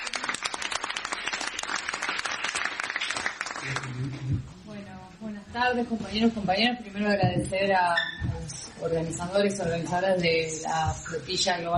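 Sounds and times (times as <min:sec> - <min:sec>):
audience applause: 0:00.0 - 0:04.2
speech: 0:03.6 - 0:08.2, 0:08.8 - 0:11.7.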